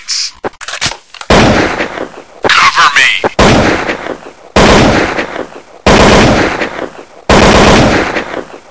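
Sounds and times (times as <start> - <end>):
AK-47 assault rifle: 0.6 - 2.2, 3.4 - 8.6.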